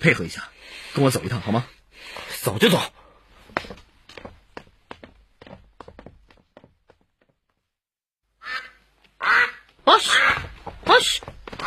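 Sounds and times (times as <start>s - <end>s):
speech: 0.0s - 3.8s
domestic duck quacking: 8.4s - 10.4s.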